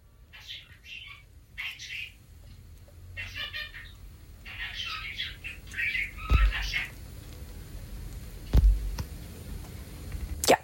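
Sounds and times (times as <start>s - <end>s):
pet bird talking in a voice message: 0.3s - 2.2s, 3.2s - 7.0s
low thumps from handling: 6.3s - 6.7s, 8.5s - 9.1s.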